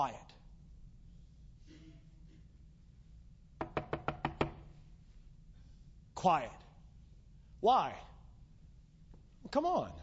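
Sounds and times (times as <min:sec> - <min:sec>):
speech: 0:00.0 - 0:00.3, 0:06.2 - 0:06.6, 0:07.6 - 0:08.1, 0:09.5 - 0:10.0
knocks on a wooden door: 0:03.6 - 0:04.7.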